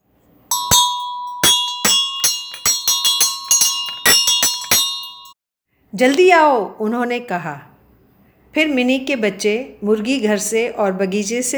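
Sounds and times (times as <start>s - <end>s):
hand bell rung on a front porch: 0.5s - 5.4s
speech: 5.9s - 7.7s, 8.5s - 11.5s.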